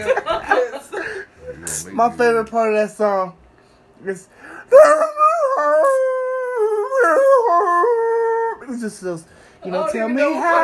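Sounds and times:
laughter: 0.0s - 1.6s
speech: 2.0s - 3.4s, 4.0s - 5.1s, 8.7s - 10.6s
person howling in imitation of a dog's howl: 4.7s - 8.8s.

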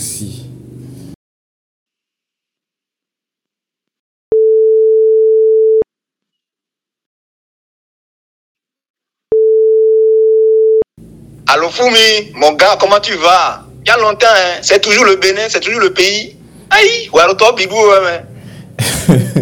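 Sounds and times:
speech: 0.2s - 0.5s, 11.5s - 19.4s
telephone ringback tone while calling someone: 4.3s - 5.8s, 9.3s - 10.8s
laughter: 18.8s - 19.4s.

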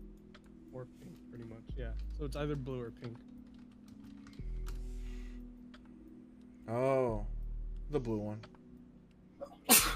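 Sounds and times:
speech: 0.8s - 3.4s, 6.7s - 7.3s, 7.9s - 8.6s
quiet inhale: 4.7s - 5.6s
person sneezing: 9.4s - 9.9s.

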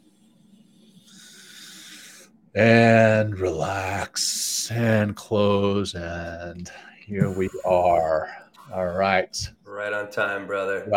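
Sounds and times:
long deep cleansing inhale through the nose: 0.8s - 2.3s
speech: 2.6s - 10.9s.

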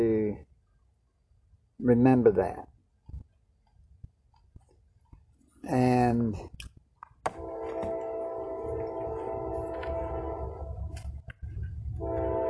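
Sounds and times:
speech: 1.8s - 2.7s, 5.6s - 6.6s
train horn blasts: 7.3s - 11.0s, 12.0s - 12.4s
low rumble: 7.3s - 12.4s.

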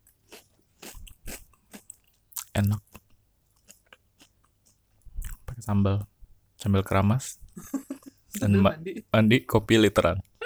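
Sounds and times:
crunching on kerupuk gendar crackers: 0.0s - 5.5s
speech: 2.6s - 2.9s, 5.7s - 7.8s, 8.4s - 10.2s
laughter: 7.6s - 10.4s.

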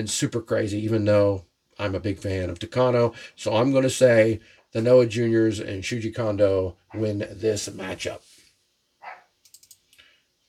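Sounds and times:
speech: 0.0s - 8.3s
Cavachon puppy yapping upstairs: 9.0s - 9.3s
keyboard clicks: 9.4s - 10.0s.

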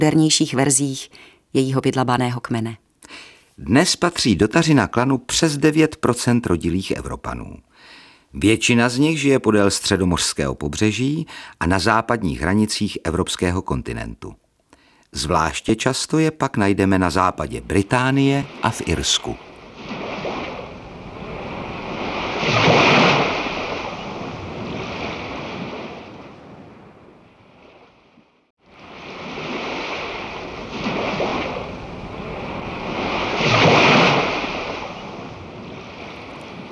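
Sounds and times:
speech: 0.0s - 14.4s, 15.1s - 19.5s
sea waves surging and crashing against stone: 17.9s - 26.7s, 28.6s - 36.7s.

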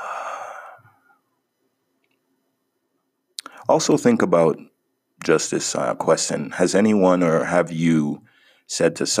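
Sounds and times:
deep breath in and out during a relaxation exercise: 0.0s - 1.2s, 8.2s - 8.7s
speech: 3.7s - 9.1s.

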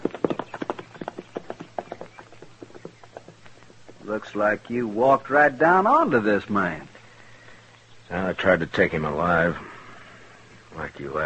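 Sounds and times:
horse hooves clip-clopping at a walking pace: 0.0s - 5.0s
speech: 4.1s - 6.9s, 8.1s - 9.7s, 10.8s - 11.2s.

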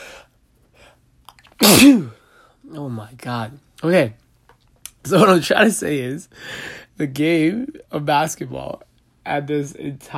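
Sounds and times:
sneeze: 1.6s - 2.2s
speech: 1.6s - 4.2s, 5.0s - 10.1s.

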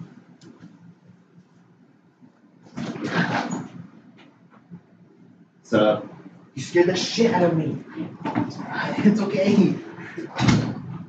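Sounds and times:
door opening with scraping burst: 2.7s - 3.8s, 10.2s - 11.0s
speech: 5.7s - 10.7s.

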